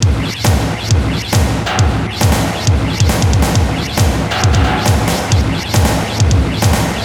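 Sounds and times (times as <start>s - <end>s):
dark industrial music loop at 136 bpm: 0.0s - 7.0s.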